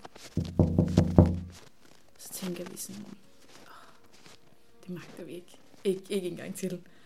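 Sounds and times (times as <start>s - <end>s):
knocking on a window: 0.4s - 1.6s
speech: 2.4s - 3.3s, 4.9s - 7.0s.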